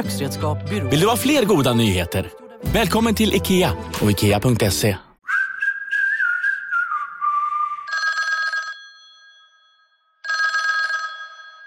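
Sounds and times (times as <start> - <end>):
speech: 0.0 - 5.1
whistled melody: 5.2 - 8.0
telephone ringing: 7.9 - 11.6.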